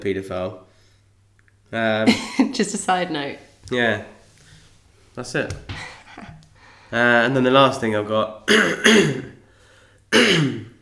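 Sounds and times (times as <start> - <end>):
speech: 0.0 - 0.7, 1.7 - 4.2, 5.2 - 6.3, 6.9 - 9.3, 10.1 - 10.6
harsh throaty coughs: 8.5 - 9.4, 10.1 - 10.8.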